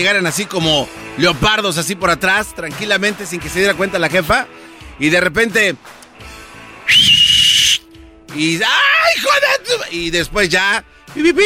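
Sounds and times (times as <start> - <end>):
speech: 0.0 - 6.3, 6.9 - 7.3, 8.4 - 11.4
flirtatious whistle: 6.8 - 7.9.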